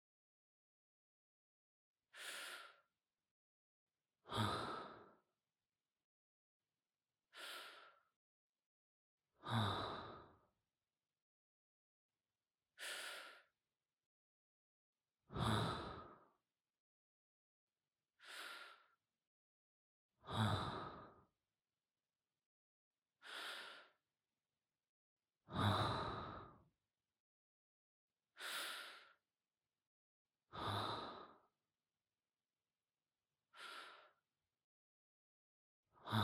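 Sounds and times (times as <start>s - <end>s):
slow deep breathing: 2.1s - 2.9s, 4.3s - 5.3s, 7.3s - 8.1s, 9.4s - 10.4s, 12.8s - 13.5s, 15.3s - 16.3s, 18.2s - 19.0s, 20.3s - 21.2s, 23.2s - 24.0s, 25.5s - 26.6s, 28.3s - 29.2s, 30.5s - 31.5s, 33.5s - 34.2s.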